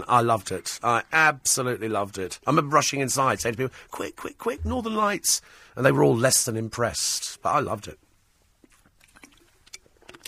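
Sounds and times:
speech: 0:00.0 - 0:08.0
person slurping a drink of water: 0:08.6 - 0:10.2.

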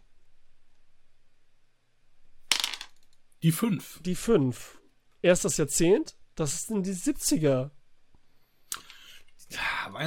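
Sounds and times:
dice clattering across a hard surface: 0:02.5 - 0:03.2
speech: 0:03.4 - 0:07.8, 0:09.5 - 0:10.0.

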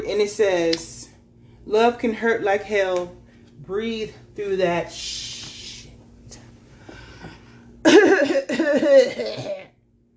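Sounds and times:
speech: 0:00.0 - 0:01.0, 0:01.6 - 0:05.3, 0:08.6 - 0:09.6
person clearing throat: 0:07.9 - 0:09.8.

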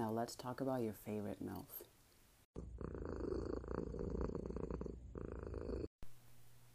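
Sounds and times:
speech: 0:00.0 - 0:01.9, 0:02.6 - 0:03.3
cat purring: 0:02.6 - 0:05.9.

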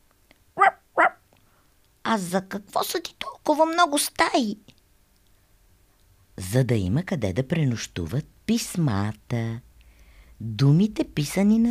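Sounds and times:
puppy barking happily: 0:00.6 - 0:01.2
speech: 0:02.1 - 0:04.7, 0:06.5 - 0:09.7, 0:10.4 - 0:11.6.

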